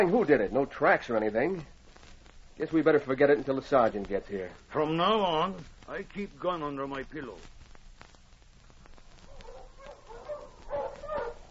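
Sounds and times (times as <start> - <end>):
speech: 0.0 - 1.7, 2.6 - 7.5
sled dogs of a dog team barking and whimpering in the snow: 9.4 - 11.5.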